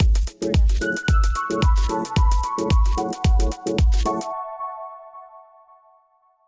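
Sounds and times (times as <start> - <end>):
short lounge music logo jingle: 0.5 - 5.2.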